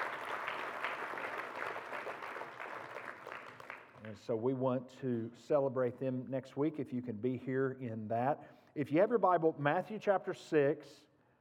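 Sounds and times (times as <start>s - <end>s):
crowd applauding: 0.0s - 4.1s
speech: 4.1s - 11.1s.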